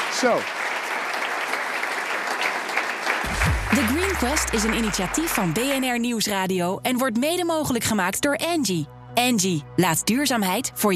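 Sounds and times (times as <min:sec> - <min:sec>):
applause from a sizeable audience: 0:00.0 - 0:06.0
speech: 0:00.2 - 0:00.6, 0:03.7 - 0:10.9.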